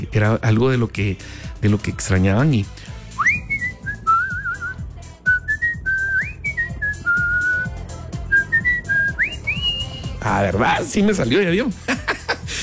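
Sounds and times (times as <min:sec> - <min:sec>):
speech: 0:00.1 - 0:02.9, 0:10.3 - 0:11.8
person whistling a melodic tune: 0:03.1 - 0:10.2
laughter: 0:11.8 - 0:12.6.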